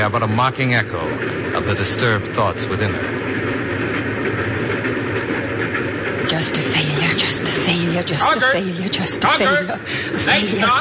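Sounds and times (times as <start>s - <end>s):
speech: 0.0s - 3.9s, 6.3s - 10.7s
train wheels clacking on rails: 0.0s - 10.7s.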